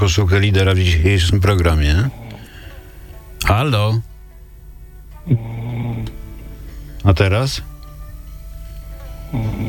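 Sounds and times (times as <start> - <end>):
speech: 0.0 - 2.2, 3.4 - 4.1, 5.2 - 5.6, 7.0 - 7.7, 9.3 - 9.6
faint hiss: 0.0 - 9.6
person snoring: 5.2 - 6.3, 9.2 - 9.6.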